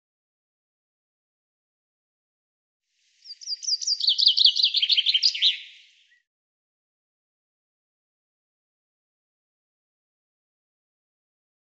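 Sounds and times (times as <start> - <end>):
bird delivering a rapid high-pitched chirping trill: 3.2 - 6.2.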